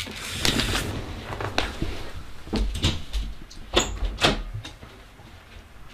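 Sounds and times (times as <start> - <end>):
door opening and closing: 0.2 - 4.5.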